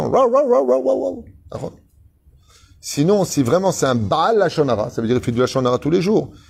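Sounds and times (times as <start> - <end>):
dog yowling: 0.0 - 1.3
speech: 0.1 - 1.8, 2.8 - 6.4.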